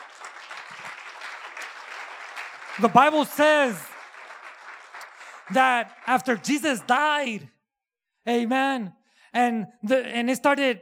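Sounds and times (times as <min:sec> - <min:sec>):
crowd applauding: 0:00.0 - 0:07.3
speech: 0:02.8 - 0:03.9, 0:05.5 - 0:07.6, 0:08.2 - 0:10.8.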